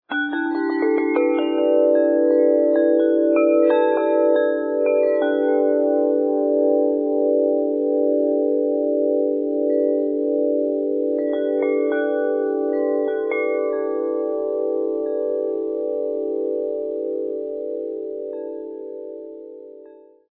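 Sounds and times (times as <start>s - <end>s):
wind chime: 0.1s - 20.3s.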